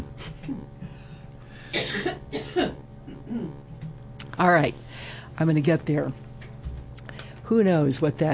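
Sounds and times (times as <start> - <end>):
person coughing: 1.6 - 3.7
speech: 4.4 - 4.8, 5.4 - 6.2, 7.5 - 8.3.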